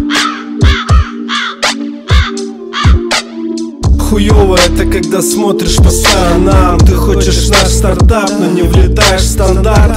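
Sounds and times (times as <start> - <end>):
crow cawing: 0.0 - 3.2
deep thumping beats: 0.0 - 5.1, 5.7 - 9.9
speech: 4.2 - 9.9.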